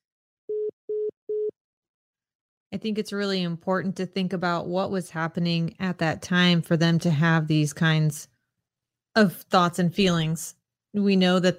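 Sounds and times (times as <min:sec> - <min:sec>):
phone line tone after the caller hangs up: 0:00.5 - 0:01.5
speech: 0:02.7 - 0:08.3, 0:09.2 - 0:11.5.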